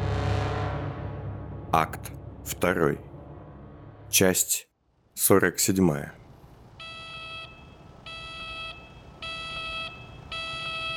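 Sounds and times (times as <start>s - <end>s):
low rumble: 0.0s - 4.4s
speech: 1.7s - 3.1s, 4.1s - 6.2s
alarm siren beeping in electronic tones: 6.8s - 10.9s.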